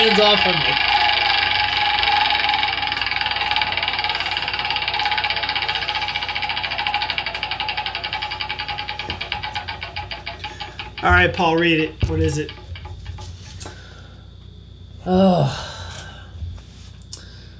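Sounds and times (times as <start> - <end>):
speech: 0.0 - 1.0, 11.0 - 12.6, 15.1 - 15.6
prize wheel being spun clicking: 0.0 - 13.3.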